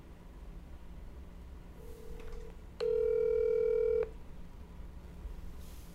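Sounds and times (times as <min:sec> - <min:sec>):
telephone tones on an outgoing call: 0:01.9 - 0:04.1.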